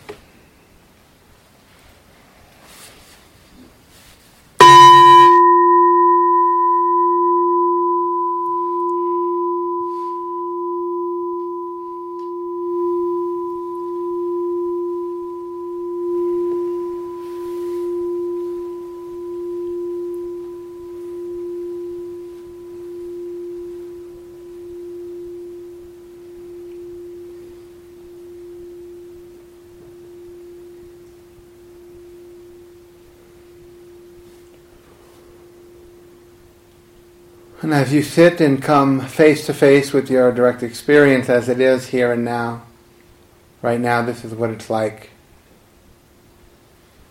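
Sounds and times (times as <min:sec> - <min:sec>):
meditation bell ringing: 0:04.6 - 0:39.8
speech: 0:37.7 - 0:42.7, 0:43.6 - 0:45.1.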